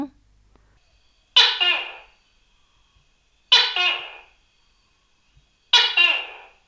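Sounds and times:
tokay gecko calling with harsh two-part croaks: 1.4 - 2.1, 3.5 - 4.4, 5.7 - 6.6.

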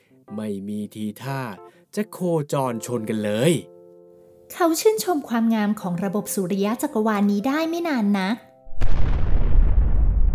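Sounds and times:
speech: 0.2 - 3.7, 4.5 - 9.1
loud explosion with heavy rumbling roar: 8.7 - 10.3.

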